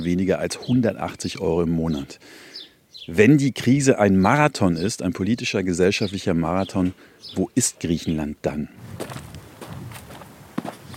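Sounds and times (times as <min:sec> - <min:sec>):
speech: 0:00.0 - 0:09.3
footsteps of a person walking toward the coast: 0:08.8 - 0:10.9.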